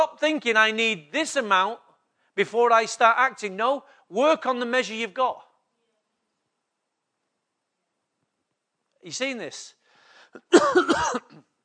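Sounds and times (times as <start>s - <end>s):
speech: 0.0s - 1.8s, 2.4s - 5.5s, 9.0s - 11.5s
faint breath: 9.8s - 10.4s
raspy coughing and throat clearing: 10.4s - 11.6s.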